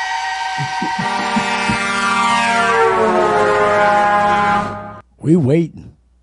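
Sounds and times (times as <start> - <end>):
train horn blaring in a blended chord: 0.1 - 5.0
laughter: 0.5 - 2.2
speech: 5.3 - 5.8.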